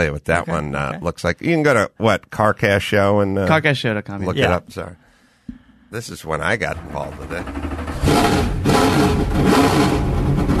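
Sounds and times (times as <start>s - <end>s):
speech: 0.0s - 5.0s, 5.9s - 10.1s
vintage race car engine revving: 6.6s - 10.5s.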